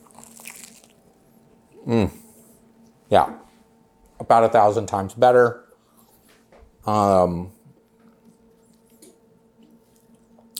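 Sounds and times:
breaking open and biting into a fried johnny cake: 0:00.0 - 0:01.0, 0:10.0 - 0:10.5
soft crackle of chewing: 0:00.0 - 0:01.1, 0:07.9 - 0:10.5
speech: 0:01.9 - 0:02.2, 0:03.1 - 0:03.5, 0:04.3 - 0:05.6, 0:06.8 - 0:07.6.

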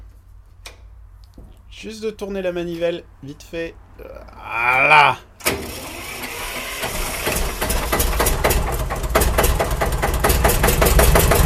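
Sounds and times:
speech: 0:01.7 - 0:05.9
old vintage Ford engine idling with tapping valve: 0:06.4 - 0:11.4.

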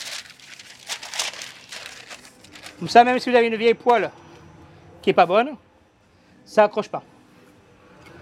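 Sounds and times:
parchment paper crinkling and rustling as pressed into a pan: 0:00.0 - 0:03.1
speech: 0:02.8 - 0:04.2, 0:05.0 - 0:05.7, 0:06.5 - 0:07.1.

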